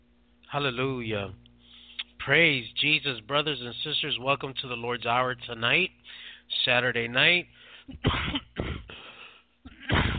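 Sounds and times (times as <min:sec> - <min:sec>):
speech: 0:00.5 - 0:01.5, 0:02.3 - 0:08.5
harsh coughs: 0:07.9 - 0:10.1.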